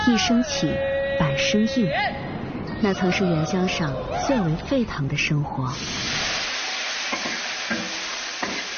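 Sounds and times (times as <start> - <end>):
speech: 0.1 - 6.2
food sizzling in a hot wok: 5.7 - 8.7
spatula stirring and scraping a wok: 7.1 - 8.7.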